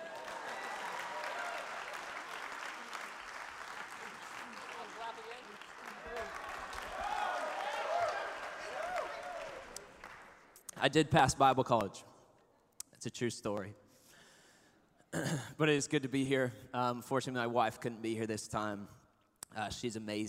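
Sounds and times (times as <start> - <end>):
crowd applauding: 0.0 - 10.5
speech: 10.8 - 12.1, 13.0 - 13.8, 15.1 - 19.0, 19.6 - 20.2.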